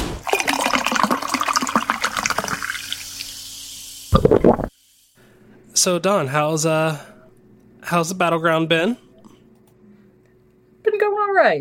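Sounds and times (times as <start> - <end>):
liquid splash: 0.2 - 3.3
drink pouring into a glass: 0.3 - 3.5
fizzy crackling of a poured drink: 0.3 - 4.7
speech: 5.9 - 7.1, 7.9 - 9.1, 11.4 - 11.5.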